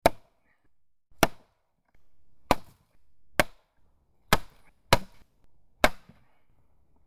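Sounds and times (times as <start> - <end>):
axe: 0.0 - 0.3, 1.2 - 1.5, 2.4 - 2.8, 3.4 - 3.7, 4.3 - 6.3.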